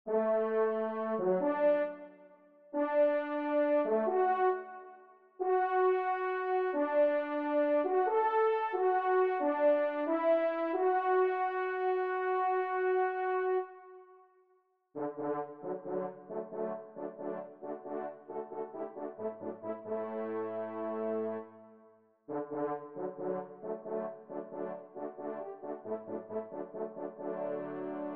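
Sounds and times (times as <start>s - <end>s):
horns ensemble: 0.1s - 2.1s, 2.8s - 13.8s, 15.0s - 21.5s, 22.3s - 28.1s.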